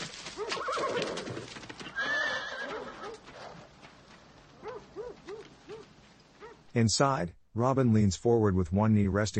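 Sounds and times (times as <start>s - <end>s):
horse hooves clopping: 0.0s - 6.7s
horse whinnying: 0.4s - 3.6s
speech: 6.8s - 9.3s.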